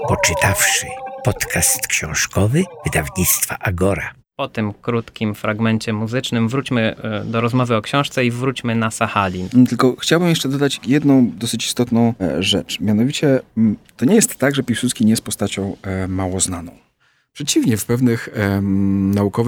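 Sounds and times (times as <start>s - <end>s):
distorted Ainu song singing voice from wax cylinder recording: 0.1s - 4.2s
speech: 0.7s - 19.4s.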